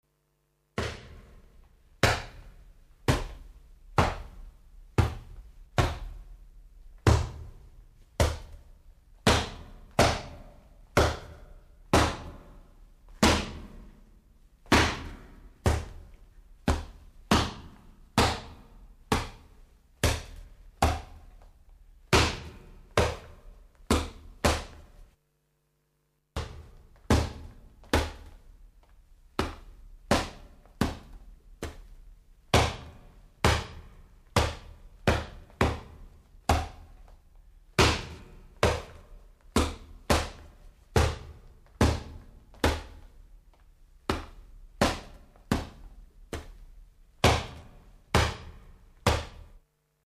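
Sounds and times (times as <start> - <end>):
punching ball being hit: 0.8 - 1.4, 2.0 - 4.4, 5.0 - 6.3, 7.0 - 7.6, 8.2 - 8.6, 9.2 - 12.5, 13.2 - 13.9, 14.7 - 21.3, 22.1 - 24.9, 26.4 - 28.4, 29.4 - 31.9, 32.5 - 37.0, 37.8 - 43.1, 44.1 - 46.6, 47.2 - 49.5.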